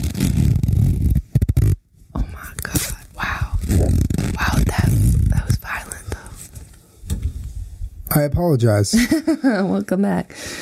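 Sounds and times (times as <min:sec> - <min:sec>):
zipper being pulled: 0:00.0 - 0:01.8, 0:02.7 - 0:05.4
speech: 0:08.2 - 0:10.6.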